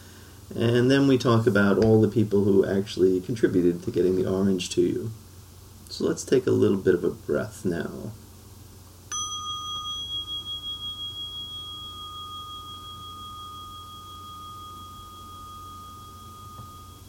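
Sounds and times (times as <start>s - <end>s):
quiet low hum: 0.0s - 17.0s
speech: 0.5s - 5.2s, 5.9s - 8.2s
meditation bell struck to end a meditation: 9.1s - 17.0s.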